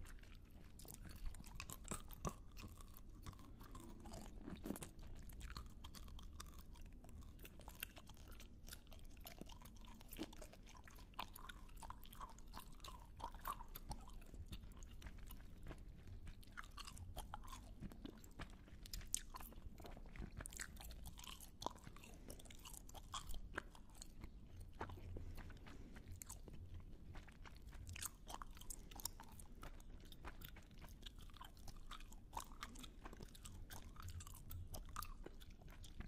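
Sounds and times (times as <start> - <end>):
close wet mouth clicks and smacks: 0.0 - 36.0
crunchy chewing snaps: 0.0 - 36.0
low steady murmur: 0.0 - 36.0.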